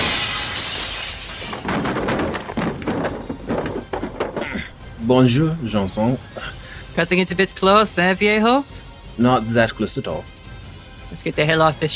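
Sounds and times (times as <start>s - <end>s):
glass shards and debris clattering and tinkling: 0.0s - 4.4s
window glass shattering: 0.0s - 4.8s
speech: 5.1s - 10.4s, 11.1s - 11.9s.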